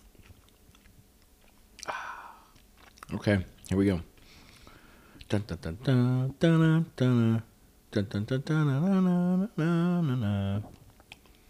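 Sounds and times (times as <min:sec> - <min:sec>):
crunchy popcorn being chewed: 0:00.0 - 0:03.8
speech: 0:03.1 - 0:04.1, 0:05.3 - 0:10.8.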